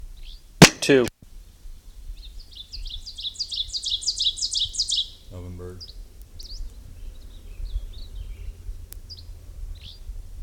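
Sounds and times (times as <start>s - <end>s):
speech: 0.8s - 1.2s
dusky flycatcher call: 2.1s - 8.5s.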